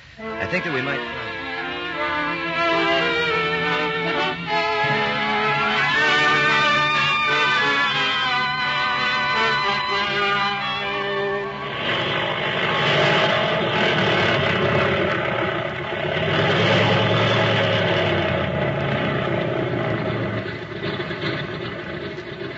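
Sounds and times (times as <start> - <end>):
propeller airplane engine droning: 0.0 - 22.5
speech: 0.2 - 1.3.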